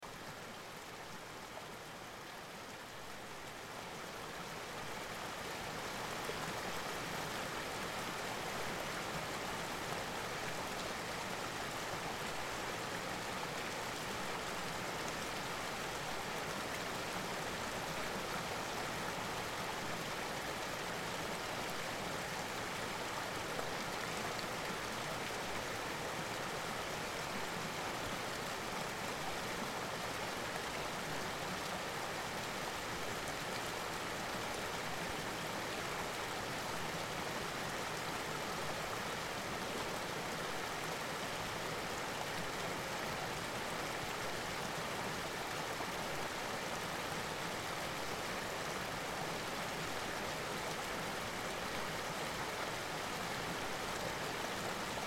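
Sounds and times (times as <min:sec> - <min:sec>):
river waterfall: 0:00.0 - 0:55.0.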